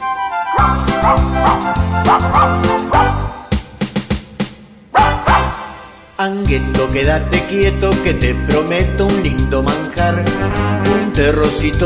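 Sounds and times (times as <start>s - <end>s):
bouncy musical backing: 0.0s - 4.2s, 5.0s - 11.8s
dog barking excitedly: 0.6s - 3.3s, 5.0s - 5.5s
speech: 1.0s - 3.2s, 6.2s - 11.8s.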